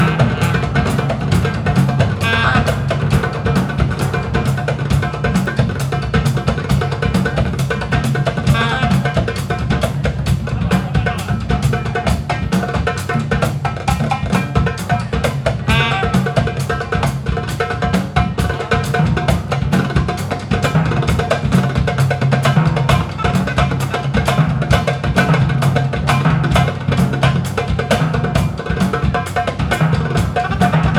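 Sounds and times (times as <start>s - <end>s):
powerful band drumming: 0.0s - 30.9s.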